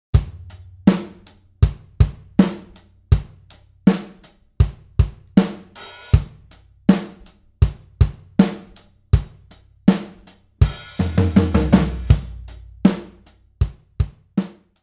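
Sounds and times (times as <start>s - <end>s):
drum comp: 0.0s - 14.8s.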